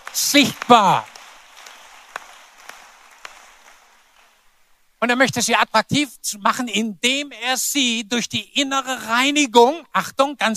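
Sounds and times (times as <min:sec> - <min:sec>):
crowd applauding: 0:00.0 - 0:04.6
sharp loud claps: 0:00.0 - 0:04.6
speech: 0:00.2 - 0:01.1, 0:05.0 - 0:10.5.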